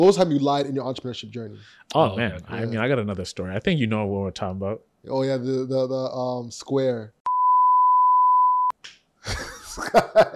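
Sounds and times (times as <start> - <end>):
speech: 0.0 - 7.2, 9.2 - 10.3
censor bleep tone masking a spoken word: 7.3 - 8.8
people laughing: 9.3 - 10.3.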